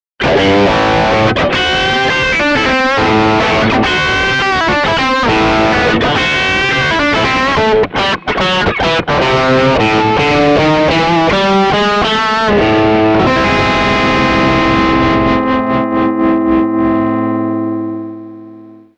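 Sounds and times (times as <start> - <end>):
Squier Stratocaster electric guitar with humbucker through Przester M distortion: 0.2 - 18.9.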